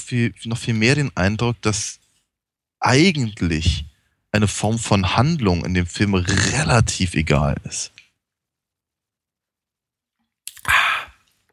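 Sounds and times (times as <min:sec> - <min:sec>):
speech: 0:00.1 - 0:02.0, 0:02.8 - 0:08.0
person gulping a drink: 0:10.2 - 0:11.5.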